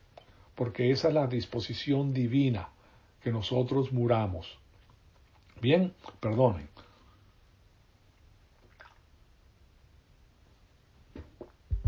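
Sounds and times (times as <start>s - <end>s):
speech: 0.6s - 4.6s, 5.6s - 6.8s
person sipping and swallowing water: 8.6s - 9.1s
soft slurps: 8.6s - 9.1s.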